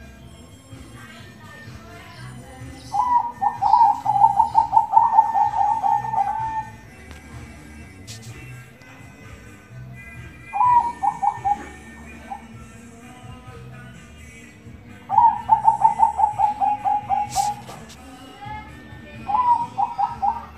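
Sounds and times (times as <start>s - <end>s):
zebra dove cooing song: 2.7s - 6.9s, 10.4s - 12.8s, 15.0s - 20.5s.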